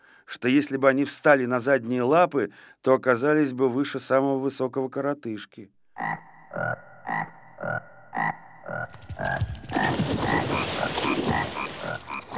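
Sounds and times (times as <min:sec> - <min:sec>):
speech: 0:00.3 - 0:11.6
single frog croaking: 0:05.8 - 0:12.3.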